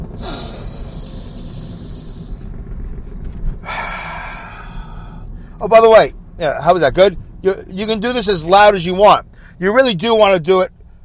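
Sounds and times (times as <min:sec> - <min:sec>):
deep slow breaths taken as a breathing exercise: 0:00.0 - 0:02.8, 0:03.5 - 0:05.6, 0:09.2 - 0:09.6
speech: 0:05.6 - 0:10.8.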